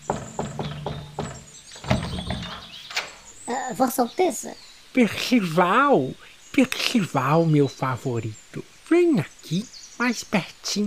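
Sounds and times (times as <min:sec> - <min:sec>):
sharp knocks on a door: 0:00.0 - 0:02.8
soft thuds: 0:00.0 - 0:03.2
speech: 0:03.6 - 0:10.8.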